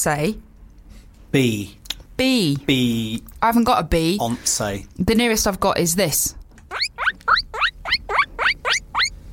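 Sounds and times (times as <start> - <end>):
speech: 0.0 - 0.5, 1.3 - 6.4
guinea pig squeaking shrill rising wheeks: 6.7 - 9.2.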